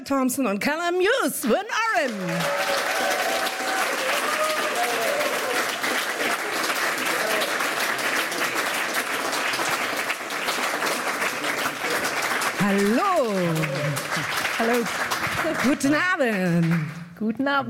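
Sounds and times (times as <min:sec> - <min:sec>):
speech: 0:00.0 - 0:03.2, 0:12.6 - 0:17.6
loud audience applause welcoming performers: 0:01.9 - 0:17.1.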